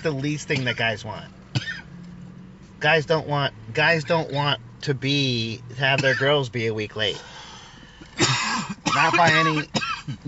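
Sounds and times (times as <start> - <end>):
speech: 0.0 - 1.4, 2.8 - 7.4, 8.2 - 10.2
person coughing harshly after smoking: 1.6 - 1.9, 8.2 - 10.2.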